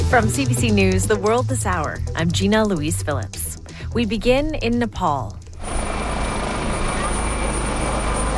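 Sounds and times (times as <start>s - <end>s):
speech: 0.1s - 5.4s
helicopter rotor and engine roar: 5.5s - 8.3s.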